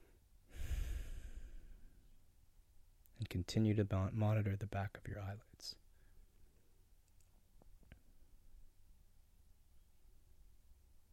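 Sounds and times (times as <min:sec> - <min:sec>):
deep slow breath during guided meditation: 0:00.0 - 0:02.2, 0:05.9 - 0:06.7
speech: 0:03.2 - 0:05.8.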